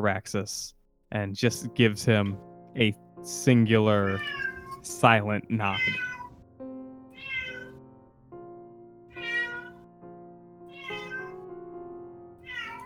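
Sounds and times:
speech: 0.0s - 6.1s
cat meowing: 4.0s - 4.8s, 5.6s - 6.3s, 7.1s - 7.8s, 9.1s - 9.8s, 10.7s - 11.4s, 12.4s - 12.8s.

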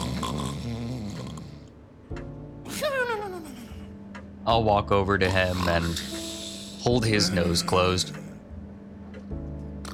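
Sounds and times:
loud snoring from an aging father: 0.0s - 1.7s, 5.4s - 8.2s
speech: 4.5s - 6.2s, 6.8s - 8.2s.

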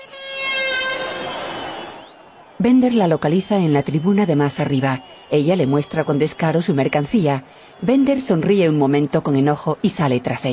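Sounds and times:
vendor sounding a horn in stadium stands: 0.0s - 2.1s
crowd roar in stadium stands: 0.0s - 10.4s
speech: 2.6s - 10.5s.

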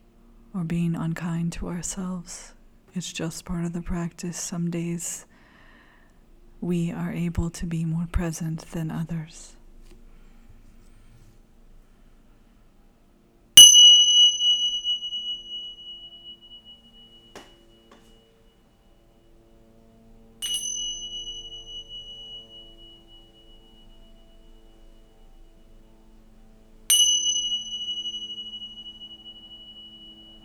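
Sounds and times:
speech: 0.6s - 5.3s, 6.6s - 9.6s
meditation bell ringing with a clear bright tone: 13.6s - 30.4s.

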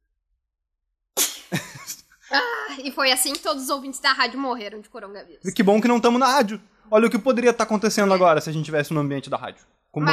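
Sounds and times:
person sneezing: 1.2s - 2.7s
speech: 2.3s - 10.1s.

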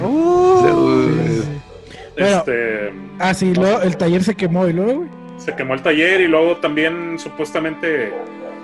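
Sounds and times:
dog howling: 0.0s - 2.4s, 8.1s - 8.6s
speech: 2.2s - 8.4s.

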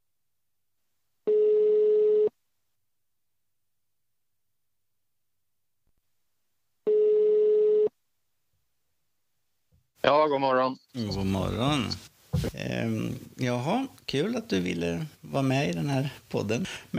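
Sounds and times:
telephone ringback tones while placing a call: 1.3s - 2.3s, 6.9s - 7.9s
speech: 10.0s - 16.9s.

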